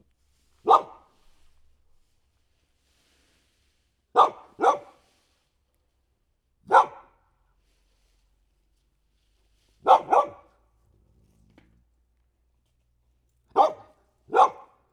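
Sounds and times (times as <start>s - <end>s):
dog barking: 0.6s - 1.1s, 4.2s - 5.0s, 6.7s - 7.2s, 9.8s - 10.6s, 13.5s - 14.8s.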